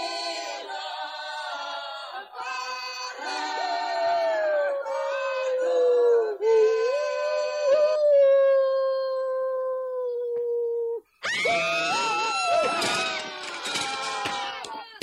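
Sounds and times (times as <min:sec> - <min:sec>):
wolf howling: 0:04.3 - 0:14.3.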